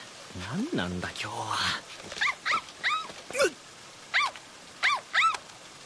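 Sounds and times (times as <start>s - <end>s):
speech: 0.4s - 2.2s
puppy yipping and whimpering: 2.2s - 3.1s, 4.1s - 5.4s.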